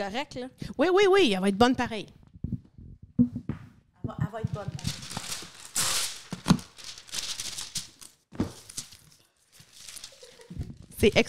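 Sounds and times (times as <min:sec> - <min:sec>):
speech: 0:00.0 - 0:02.2, 0:04.4 - 0:05.0, 0:11.0 - 0:11.2
parchment paper crinkling as it lines a pan: 0:04.5 - 0:11.2.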